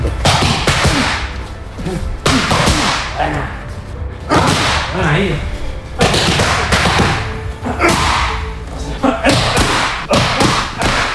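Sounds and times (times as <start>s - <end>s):
punches striking trainer's hand pads: 0.1s - 1.3s, 2.2s - 3.2s, 4.3s - 4.9s, 6.0s - 8.4s, 9.2s - 11.1s
speech: 1.9s - 2.2s, 3.2s - 3.6s, 4.9s - 5.5s.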